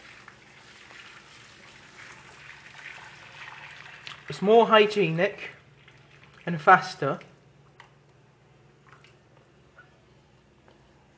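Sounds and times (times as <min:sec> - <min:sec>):
water drained from a pot of spaghetti using the pot's lid: 0:00.0 - 0:05.2, 0:05.8 - 0:06.6
speech: 0:04.3 - 0:05.6, 0:06.4 - 0:07.3.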